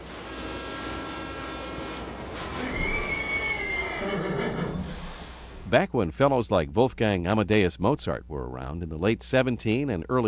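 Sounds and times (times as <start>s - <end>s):
high metallic steam train wheel squeal: 0.0s - 5.0s
steam train rumbling along the rails: 0.0s - 5.8s
speech: 5.7s - 10.2s.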